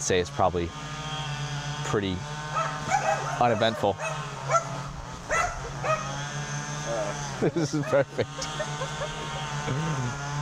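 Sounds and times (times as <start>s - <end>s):
speech: 0.0s - 1.0s, 1.9s - 4.7s, 7.4s - 9.0s, 9.6s - 10.2s
dog barking: 2.5s - 6.2s
laughter: 6.9s - 10.3s.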